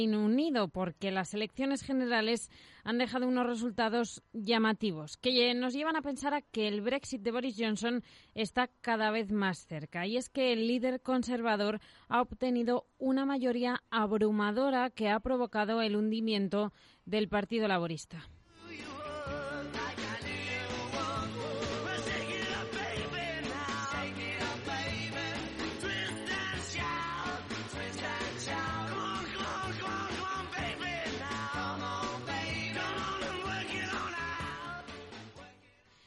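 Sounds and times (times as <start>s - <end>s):
speech: 0.0s - 19.0s
driving drums in a rock and roll song: 18.8s - 35.4s
guitars in a rock and roll song: 18.8s - 35.4s.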